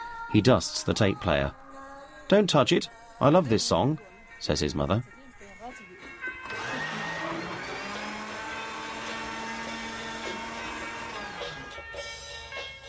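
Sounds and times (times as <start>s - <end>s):
speech: 0.3s - 1.6s, 2.3s - 5.2s
blender mixing butter for butter tea: 6.5s - 11.8s.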